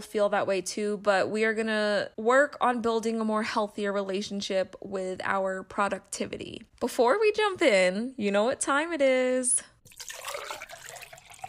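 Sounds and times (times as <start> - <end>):
speech: 0.0 - 10.4
water being poured to drink: 9.8 - 11.4.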